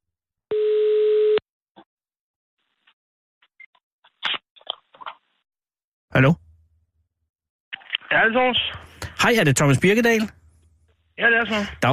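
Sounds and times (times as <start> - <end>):
telephone ringing tone while placing a call: 0.5 - 1.4
speech: 6.2 - 6.4, 8.3 - 10.4, 11.2 - 11.9.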